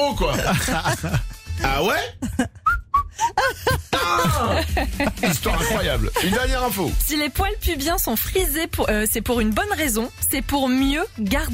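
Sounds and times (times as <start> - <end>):
laughter: 0.0 - 1.3, 3.2 - 6.8
speech: 0.0 - 2.6, 3.2 - 11.5
whistling: 2.6 - 3.2.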